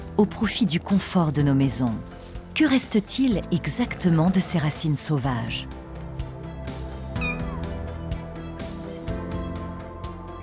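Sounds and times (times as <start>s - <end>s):
layered music: 0.0s - 10.4s
speech: 0.2s - 5.8s
domestic cat meowing: 7.2s - 7.6s.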